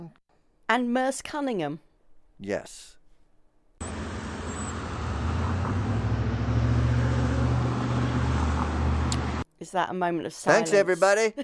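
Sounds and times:
speech: 0.1 - 3.0, 9.6 - 11.4
road traffic rumble: 3.8 - 9.4.

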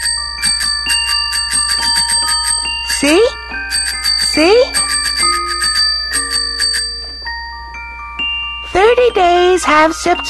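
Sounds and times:
small tricycle bell ringing: 0.0 - 10.2
speech: 3.0 - 3.4, 4.4 - 4.8, 9.2 - 10.2.

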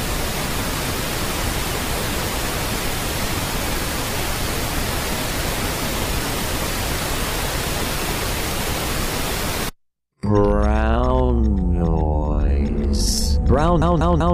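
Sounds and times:
pink noise hiss: 0.0 - 9.7
person speaking: 10.2 - 14.3.

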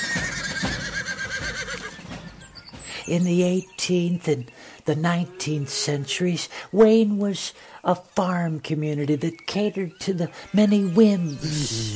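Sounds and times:
horse neighing: 0.0 - 2.3
speech: 3.1 - 11.9.

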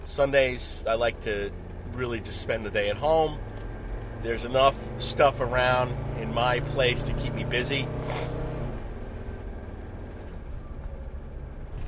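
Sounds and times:
car driving in traffic with road and engine noise: 0.0 - 11.8
speech: 0.2 - 3.6, 4.2 - 8.4.

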